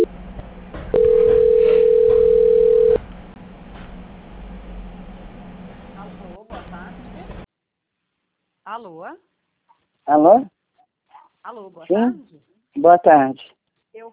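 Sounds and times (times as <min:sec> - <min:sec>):
continuous phone-line hiss: 0:00.9 - 0:03.0
telephone call transfer tone: 0:00.9 - 0:03.0
speech: 0:08.8 - 0:09.3, 0:10.1 - 0:10.5, 0:11.4 - 0:14.1.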